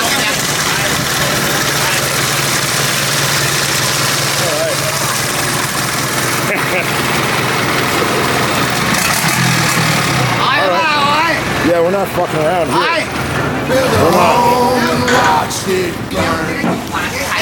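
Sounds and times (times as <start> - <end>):
boat engine idling: 0.0 - 17.4
faint voices murmuring: 0.0 - 17.4
laughter: 3.4 - 8.9, 13.6 - 17.4
speech: 11.8 - 13.1.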